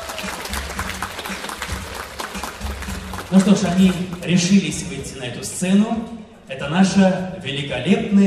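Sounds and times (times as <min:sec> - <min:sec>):
audience applause: 0:00.0 - 0:04.5
speech: 0:03.3 - 0:08.2.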